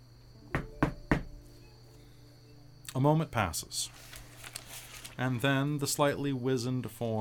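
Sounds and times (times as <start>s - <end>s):
faint hum: 0.0s - 7.1s
firm knocks on a wooden door: 0.5s - 1.4s
speech: 2.9s - 4.2s, 5.2s - 7.1s.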